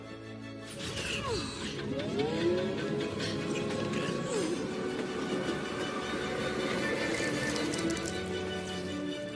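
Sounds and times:
high metallic squeals and whines of a train: 0.7 - 9.1
train rolling in with a rumble: 0.7 - 9.1.

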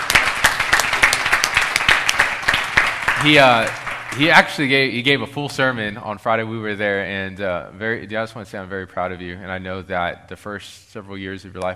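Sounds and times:
audience applauding a recent graduate: 0.0 - 4.7
speech: 3.2 - 11.7.

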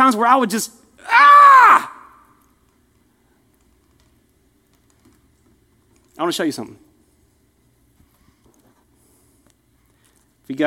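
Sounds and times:
speech: 0.1 - 1.9, 6.2 - 6.8, 10.5 - 10.6
loud strained human scream of frustration: 1.0 - 2.2.

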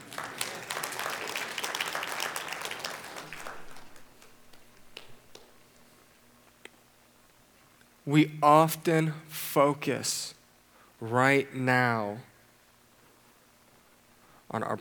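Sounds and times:
audience applause: 0.0 - 5.6
speech: 8.1 - 10.4, 11.0 - 12.3, 14.5 - 14.7.

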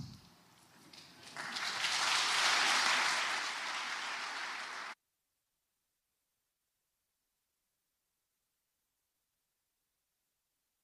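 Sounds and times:
audience applause: 0.9 - 5.0.

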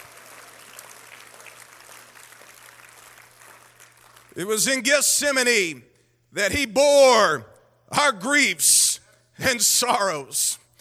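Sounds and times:
audience clapping hands: 0.0 - 4.8
speech: 4.4 - 10.6.

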